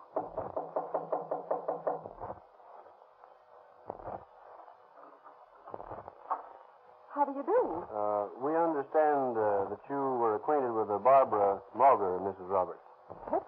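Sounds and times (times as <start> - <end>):
knocking on a door: 0.1 - 2.4
speech: 7.2 - 12.8.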